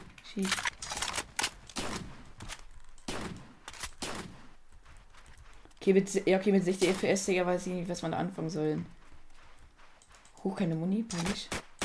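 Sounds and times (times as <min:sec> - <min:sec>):
video game noise: 0:00.0 - 0:11.8
speech: 0:00.4 - 0:00.7, 0:05.8 - 0:09.0, 0:10.4 - 0:11.6
pump-action shotgun blasts in a video game: 0:01.7 - 0:02.3, 0:03.1 - 0:04.6, 0:06.8 - 0:07.2, 0:11.1 - 0:11.8.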